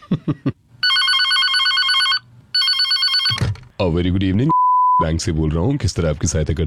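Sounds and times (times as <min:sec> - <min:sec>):
speech: 0:00.3 - 0:00.6, 0:03.8 - 0:06.6
phone ringback tone: 0:00.8 - 0:03.4.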